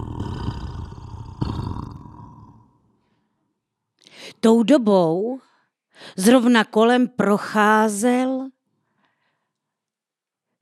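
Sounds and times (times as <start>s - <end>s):
deep eerie monster growl in an abyss: 0.0s - 2.9s
speech: 4.4s - 8.6s.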